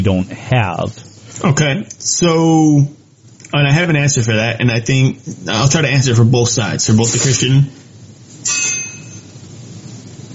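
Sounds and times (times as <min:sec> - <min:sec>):
speech: 0:00.0 - 0:07.8, 0:08.4 - 0:08.9
sharp metallic clang of pet falling into metal fireplace fence: 0:08.4 - 0:09.3.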